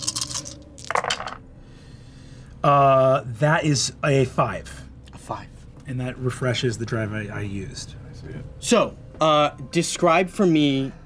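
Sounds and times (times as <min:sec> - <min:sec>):
dice rolling and clattering: 0:00.0 - 0:01.4
speech: 0:02.6 - 0:11.0.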